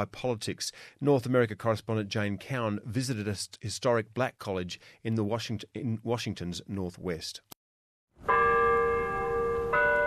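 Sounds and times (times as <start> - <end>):
speech: 0.0 - 7.6
clock tower bell chiming on a university campus in northwest Washington: 8.2 - 10.0.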